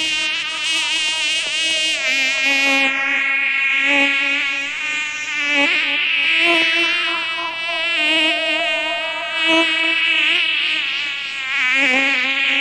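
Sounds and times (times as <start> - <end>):
swarm of bees buzzing: 0.0 - 12.5.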